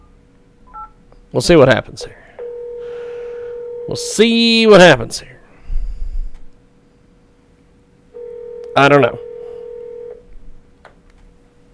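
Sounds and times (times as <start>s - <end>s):
speech: 1.3s - 2.3s, 3.9s - 5.4s, 8.8s - 9.3s
steady telephone tone: 2.4s - 4.0s, 8.2s - 10.2s.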